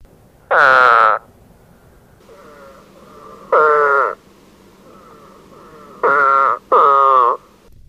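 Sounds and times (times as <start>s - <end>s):
spadefoot toad giving nasal retching calls: 0.5s - 1.2s, 2.2s - 7.7s.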